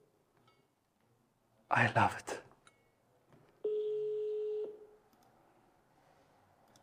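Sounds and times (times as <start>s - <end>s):
speech: 1.7s - 2.4s
ringback tone of an unanswered outgoing telephone call: 3.6s - 4.8s.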